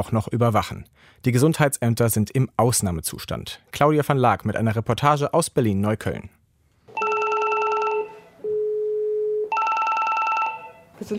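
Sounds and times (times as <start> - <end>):
speech: 0.0 - 6.4, 11.0 - 11.1
electronic telephones ringing at a public health office: 6.9 - 8.7, 9.5 - 10.9.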